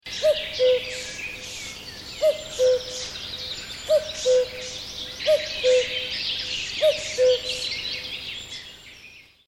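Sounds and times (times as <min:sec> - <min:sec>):
busy chorus of other birds: 0:00.1 - 0:09.4
common cuckoo two-note cu-coo call: 0:00.2 - 0:01.1, 0:02.2 - 0:03.1, 0:03.9 - 0:06.2, 0:06.8 - 0:07.7.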